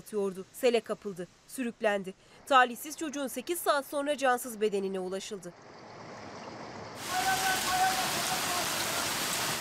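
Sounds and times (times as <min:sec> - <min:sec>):
speech: 0:00.1 - 0:05.8
heavy rain on hard surfaces: 0:06.9 - 0:09.5.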